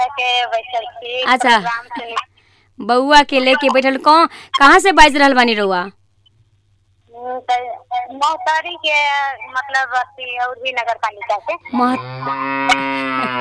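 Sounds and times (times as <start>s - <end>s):
speech: 0.2s - 6.0s, 7.2s - 13.3s
cow mooing at a home where cattle are kept: 11.9s - 13.3s.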